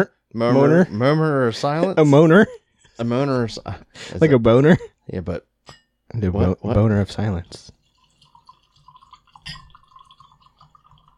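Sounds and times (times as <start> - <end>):
speech: 0.0 - 7.8
clink of a glass: 5.6 - 6.0, 8.0 - 11.1
liquid pouring into a glass: 6.8 - 11.1.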